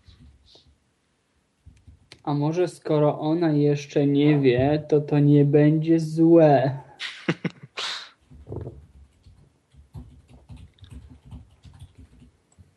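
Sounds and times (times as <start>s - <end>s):
speech: 2.3s - 6.9s
loud typing on a computer keyboard: 8.2s - 12.7s.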